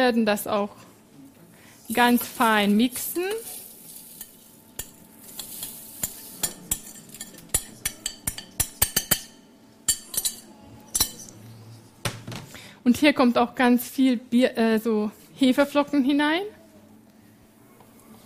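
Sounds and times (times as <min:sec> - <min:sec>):
speech: 0:00.0 - 0:00.9, 0:01.9 - 0:03.6, 0:12.8 - 0:16.6
faint steady sizzle of sunflower seeds roasting in a pan: 0:01.2 - 0:07.4
utensil clinking and scraping a pan of roasting sunflower seeds: 0:01.9 - 0:09.3.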